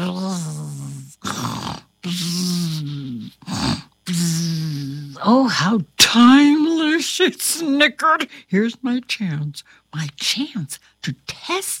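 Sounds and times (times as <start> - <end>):
voice imitating loud snoring: 0.0 - 5.2
speech: 5.2 - 6.6, 7.2 - 11.7.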